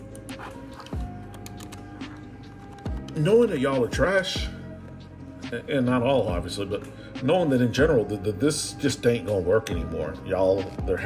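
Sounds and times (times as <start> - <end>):
typing on a computer keyboard at work: 0.0 - 3.2
speech: 3.2 - 4.6, 5.5 - 11.0.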